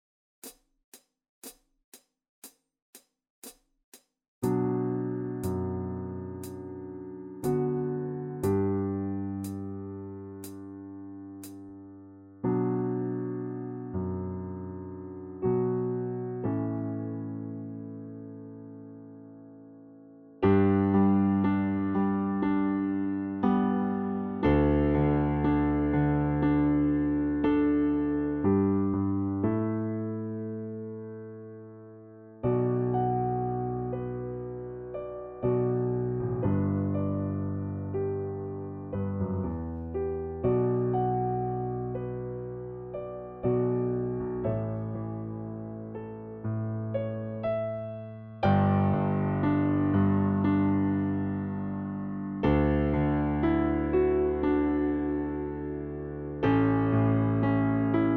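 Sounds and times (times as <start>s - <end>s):
piano part of a duo for flute and piano: 4.4s - 58.1s
click track intro: 10.4s - 10.6s.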